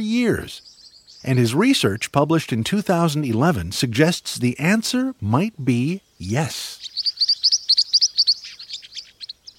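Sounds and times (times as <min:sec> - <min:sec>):
speech: 0:00.0 - 0:06.9
green-rumped parrotlet calls: 0:06.8 - 0:09.5.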